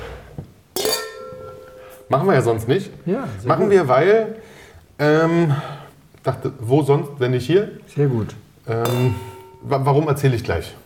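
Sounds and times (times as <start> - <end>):
wine glasses clinking in a toast: 0.8 - 2.2, 8.8 - 10.2
speech: 2.1 - 10.8.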